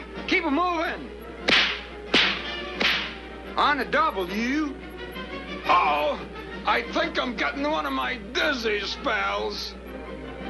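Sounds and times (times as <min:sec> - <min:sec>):
speech: 0:00.4 - 0:01.6, 0:03.6 - 0:09.8
whip cracks: 0:01.5 - 0:03.2.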